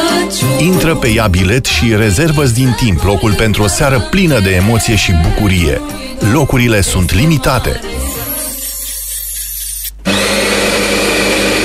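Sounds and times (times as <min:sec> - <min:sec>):
speech: 0:00.6 - 0:08.1
coffee grinder grinding coffee beans: 0:08.1 - 0:11.6.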